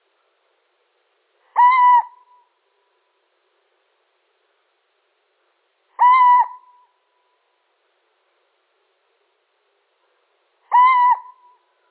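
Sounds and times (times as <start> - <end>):
male Little owl mewing call: 1.5 - 2.5, 6.0 - 7.0, 10.6 - 11.6.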